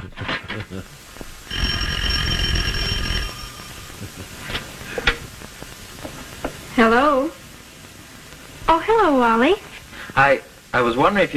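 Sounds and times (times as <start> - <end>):
murmuring: 0.0 - 6.9
speech: 0.6 - 1.0, 6.8 - 7.4, 8.7 - 11.3
loud electric telephone bell ringing: 1.2 - 6.6.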